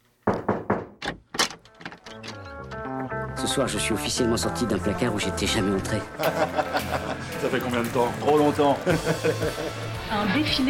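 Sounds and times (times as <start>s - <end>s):
wooden doors being opened with thunks and clunks: 0.3s - 2.9s
speech: 3.4s - 10.6s
laughter: 6.0s - 10.0s.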